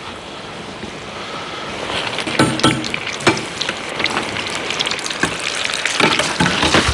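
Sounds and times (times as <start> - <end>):
bitterballen croquettes deep-frying in bubbling oil with pops and crackles: 1.9 - 6.9.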